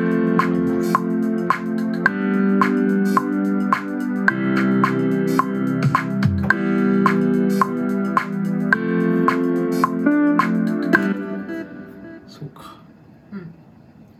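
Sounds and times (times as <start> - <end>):
instrumental music phrase looping with rhythmic beat and sustained chords: 0.0 - 12.6.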